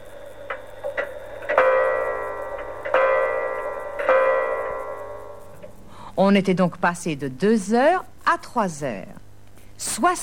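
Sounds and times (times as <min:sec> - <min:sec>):
clock chiming: 0:00.0 - 0:05.8
speech: 0:06.2 - 0:09.2, 0:09.8 - 0:10.2.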